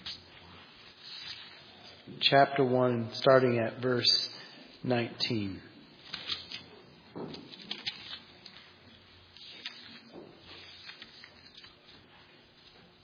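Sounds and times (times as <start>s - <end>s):
pages of pew Bibles rustling and flipping: 0.0s - 1.7s, 6.0s - 13.0s
speech: 2.2s - 5.7s, 7.2s - 7.5s.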